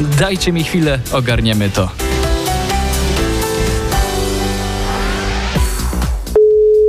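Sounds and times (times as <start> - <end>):
speech: 0.0 - 2.1
music with a steady beat: 0.0 - 6.4
telephone call tone while placing a call: 6.4 - 6.8.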